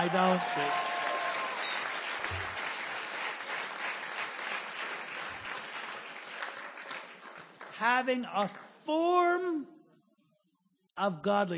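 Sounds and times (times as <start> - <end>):
speech: 0.0 - 0.9, 7.8 - 9.8, 11.0 - 11.5
scattered half-hearted audience applause: 0.0 - 8.8.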